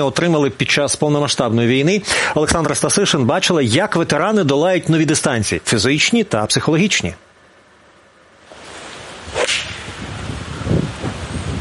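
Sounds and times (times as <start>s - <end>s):
speech: 0.0s - 7.3s
steady noise: 0.0s - 11.5s
golf club whipping through the air: 8.5s - 10.3s
golf club striking a ball: 9.3s - 10.0s.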